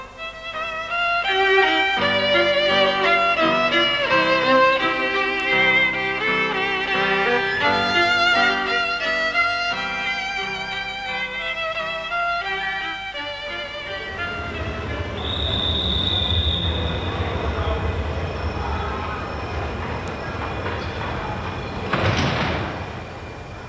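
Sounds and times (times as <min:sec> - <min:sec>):
train chord-like tones at a railway station: 0:00.0 - 0:23.6
rumble of rolling train cars at a railway station: 0:01.4 - 0:10.6, 0:13.3 - 0:23.6
train wheels squealing at a railway station: 0:01.5 - 0:23.6.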